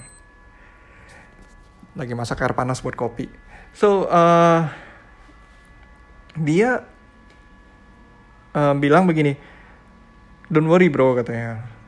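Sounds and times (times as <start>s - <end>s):
faint high-pitched electronic kitchen timer alarm: 0.0s - 0.5s
speech: 2.0s - 4.8s, 6.4s - 6.9s, 8.5s - 9.5s, 10.5s - 11.7s.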